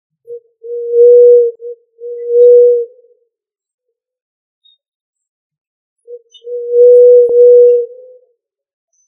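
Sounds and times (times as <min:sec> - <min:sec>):
pigeon cooing: 0:00.3 - 0:03.1, 0:06.1 - 0:08.2.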